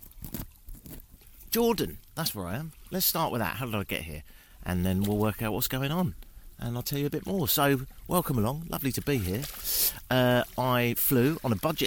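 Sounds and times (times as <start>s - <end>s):
crystallised white salt crust being prodded on the Dead Sea shore in Jordan: 0.0s - 1.2s, 8.8s - 11.8s
speech: 1.5s - 11.8s.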